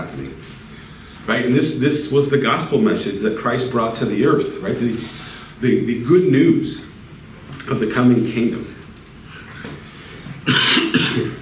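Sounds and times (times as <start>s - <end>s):
speech: 1.2s - 6.9s, 7.7s - 8.7s
harsh coughs: 10.4s - 11.4s.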